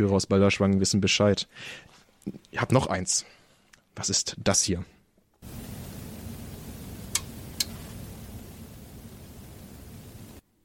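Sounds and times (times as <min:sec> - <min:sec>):
speech: 0:00.0 - 0:03.4, 0:04.0 - 0:05.0
broadband radio static hissing: 0:05.4 - 0:10.4
sharp clicks: 0:07.0 - 0:07.9.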